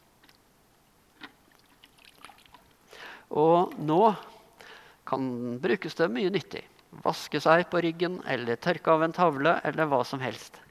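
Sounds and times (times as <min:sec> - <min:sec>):
dry sponge dipped into water and soaking up: 0:01.2 - 0:02.8
small water drips: 0:01.2 - 0:04.5
water splash: 0:01.6 - 0:02.7
speech: 0:03.3 - 0:04.3, 0:05.1 - 0:10.6.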